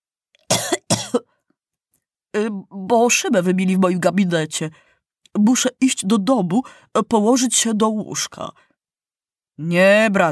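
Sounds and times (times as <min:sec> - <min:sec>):
person coughing: 0:00.5 - 0:01.4
speech: 0:02.3 - 0:08.7, 0:09.6 - 0:10.3.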